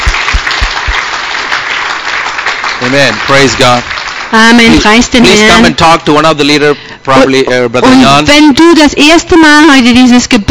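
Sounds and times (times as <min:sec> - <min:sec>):
congregation applauding at a church worship service: 0:00.0 - 0:05.6
speech: 0:02.8 - 0:10.5.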